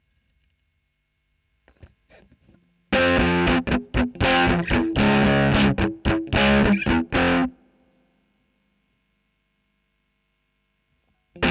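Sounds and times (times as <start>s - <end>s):
electric guitar recorded with a Royer microphone: 1.7s - 7.6s.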